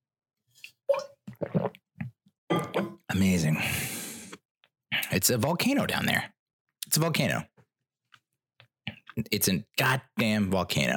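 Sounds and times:
wet bubbling gurgles from a person's throat: 1.3s - 2.2s
speech: 3.2s - 3.8s, 5.2s - 7.5s, 9.2s - 10.9s.

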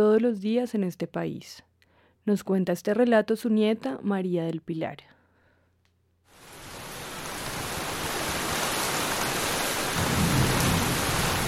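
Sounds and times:
speech: 0.0s - 5.1s
steady heavy rain in a thunderstorm: 6.3s - 11.4s
deep roll of thunder: 10.0s - 11.4s.

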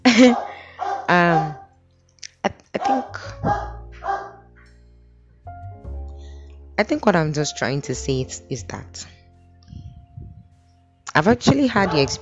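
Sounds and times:
dog barking: 0.1s - 1.7s, 2.8s - 4.4s, 11.7s - 12.1s
speech: 0.2s - 0.5s, 1.1s - 1.6s, 2.4s - 3.7s, 6.8s - 9.2s, 11.2s - 12.1s.

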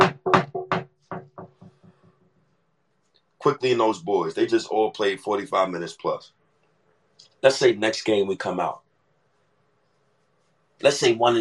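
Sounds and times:
hand knocking on wood: 0.0s - 2.1s
speech: 3.4s - 6.4s, 7.4s - 8.8s, 10.8s - 11.3s.

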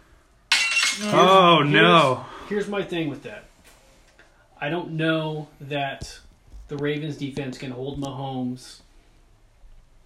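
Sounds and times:
crashing and ringing glass shards clattering: 0.5s - 1.3s
glass smash sound effect: 0.5s - 1.4s
speech: 1.0s - 3.5s, 4.6s - 8.8s.

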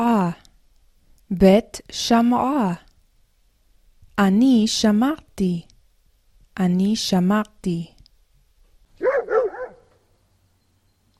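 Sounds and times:
speech: 0.0s - 0.4s, 1.3s - 2.8s, 4.2s - 5.7s, 6.6s - 8.0s
dog barking: 9.0s - 10.0s.

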